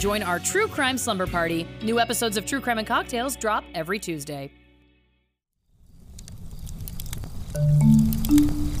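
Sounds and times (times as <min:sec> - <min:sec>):
speech: 0:00.0 - 0:04.6, 0:07.6 - 0:08.4
campfire crackling: 0:05.7 - 0:08.7
sharp pops and snaps of a campfire: 0:06.2 - 0:08.7.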